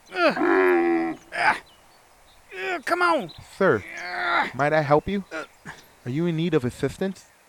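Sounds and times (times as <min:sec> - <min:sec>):
camel groaning in a drawn-out bellow: 0:00.0 - 0:01.7, 0:02.5 - 0:04.6, 0:05.3 - 0:05.8
speech: 0:00.3 - 0:00.5, 0:02.9 - 0:05.4, 0:06.0 - 0:07.3.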